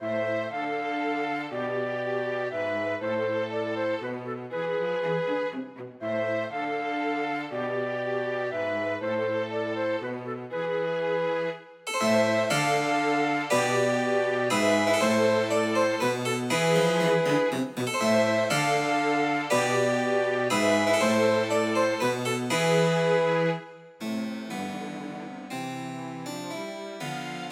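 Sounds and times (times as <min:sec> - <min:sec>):
flute playing a minuet: 0:00.0 - 0:24.0
cello playing a minuet: 0:00.0 - 0:27.5
violin playing a minuet: 0:00.0 - 0:27.5
harpsichord playing a minuet: 0:11.9 - 0:27.5.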